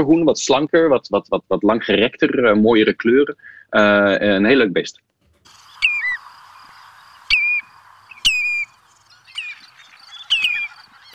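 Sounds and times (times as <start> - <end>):
speech: 0.0 - 5.1
hiss: 0.0 - 11.1
common redshank whistled calls: 5.5 - 11.1.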